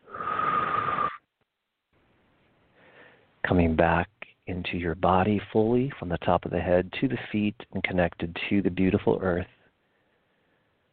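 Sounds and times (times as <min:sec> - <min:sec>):
deep breath out: 0:00.0 - 0:01.2, 0:02.7 - 0:03.4, 0:09.6 - 0:10.9
speech: 0:03.5 - 0:09.6.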